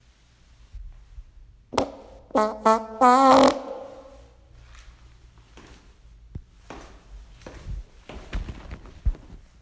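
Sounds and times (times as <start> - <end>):
fart notification sound: 1.8 - 4.2.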